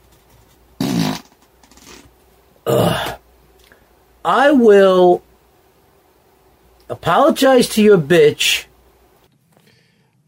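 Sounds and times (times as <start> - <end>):
fart: 0.8 - 2.1
speech: 4.3 - 5.2, 7.0 - 8.7.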